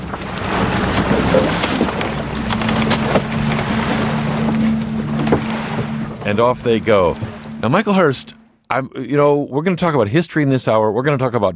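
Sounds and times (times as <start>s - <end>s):
wooden Viking ship timbers creaking and groaning: 0.0s - 8.0s
knocks and splashes of a wooden Viking ship: 0.0s - 8.3s
steady wash of water against a wooden Viking ship: 0.0s - 8.5s
wind: 0.0s - 11.1s
speech: 6.3s - 11.5s.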